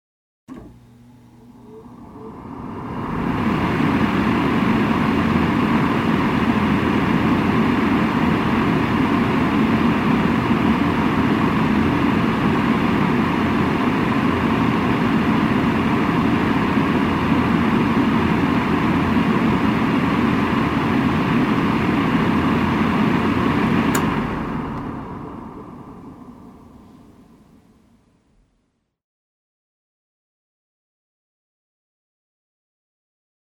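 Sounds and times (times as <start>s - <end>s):
hair dryer: 0.5s - 25.0s.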